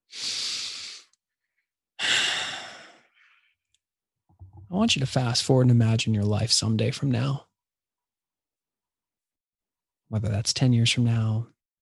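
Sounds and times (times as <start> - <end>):
person taking deep breaths: 0.0 - 1.1, 2.0 - 3.6
speech: 4.7 - 7.5, 10.1 - 11.6.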